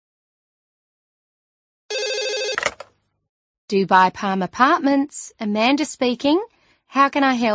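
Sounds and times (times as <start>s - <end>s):
telephone at a holiday apartment agency ringing in an electronic trill: 1.9s - 2.9s
sharp clicks and clunks of a telephone being answered: 2.5s - 2.9s
speech: 3.7s - 7.5s.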